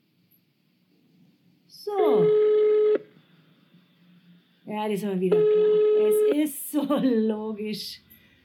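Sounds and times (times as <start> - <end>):
faint noise: 0.0 - 8.4
speech: 1.7 - 2.5, 4.7 - 8.1
electronic telephone ring tone on an outgoing call: 1.9 - 3.1, 5.3 - 6.4.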